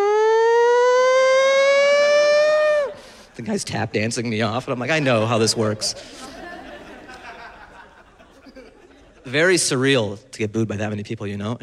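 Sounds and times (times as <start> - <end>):
voice imitating a wailing siren: 0.0 - 3.0
laughter: 2.9 - 9.8
speech: 3.5 - 6.3, 9.3 - 11.6.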